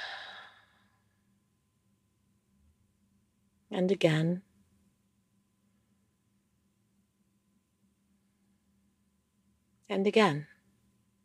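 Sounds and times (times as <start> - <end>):
slow soft breath out during a calm breathing exercise: 0.0 - 1.0
speech: 3.7 - 4.5, 9.9 - 10.5.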